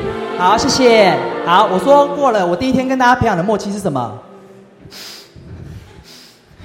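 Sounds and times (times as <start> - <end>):
speech: 0.4 - 4.2, 4.9 - 5.1
group of people inhaling deeply during a breathing exercise: 4.5 - 6.6.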